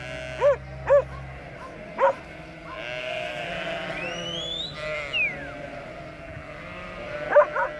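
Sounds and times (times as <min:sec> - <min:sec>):
outdoor sheep flock bleating at about 2000 metres altitude: 0:00.0 - 0:07.7
Abruzzese shepherd dog giving short sharp barks: 0:00.4 - 0:02.9, 0:07.3 - 0:07.7.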